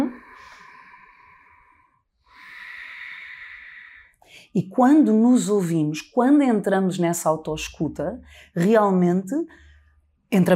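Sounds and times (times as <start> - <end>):
long deep breath drawn in through the nose with the mouth closed: 0.1 - 4.5
speech: 4.5 - 9.7, 10.3 - 10.5.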